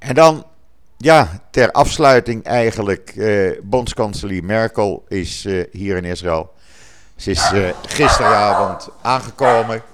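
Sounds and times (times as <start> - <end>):
speech: 0.1 - 6.6, 7.2 - 9.9
dog barking: 7.2 - 9.9.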